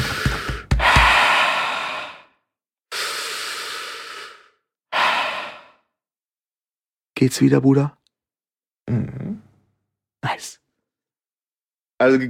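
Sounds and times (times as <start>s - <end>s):
person breathing deeply: 0.0s - 6.0s
speech: 7.2s - 8.0s, 8.9s - 9.3s, 10.2s - 10.6s, 12.0s - 12.2s.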